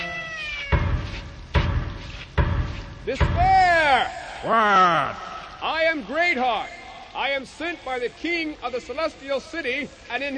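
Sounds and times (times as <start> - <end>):
cat giving a drawn-out meow: 0.0 - 0.9
heavy knocks or thuds: 0.7 - 4.5
speech: 3.1 - 10.3.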